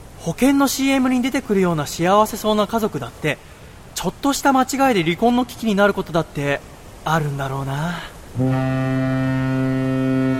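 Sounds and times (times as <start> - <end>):
speech: 0.2 - 9.4
ship's foghorn blast: 8.4 - 10.3.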